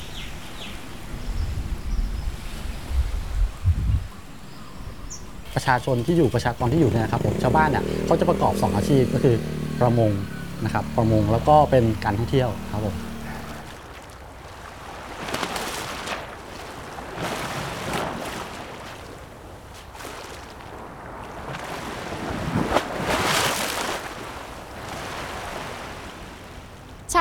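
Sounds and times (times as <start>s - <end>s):
steady wind-blown roar: 0.0s - 13.8s
ocean waves washing onto the shore at a beach in Thailand: 0.0s - 27.1s
speech: 5.6s - 13.1s.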